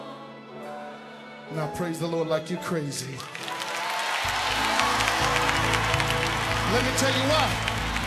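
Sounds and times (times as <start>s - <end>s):
speech: 1.5s - 3.5s, 6.7s - 7.7s
audience clapping hands: 3.2s - 8.0s
low rhythmic hum: 4.4s - 8.0s.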